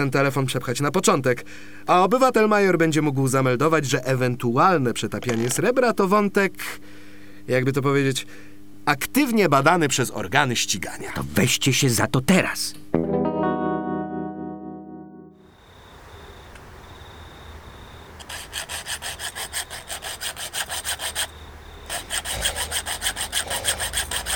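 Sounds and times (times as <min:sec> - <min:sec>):
speech: 0:00.0 - 0:12.9
sustained musical tones: 0:13.4 - 0:15.4
hand saw sawing in rapid back-and-forth strokes: 0:18.2 - 0:24.3.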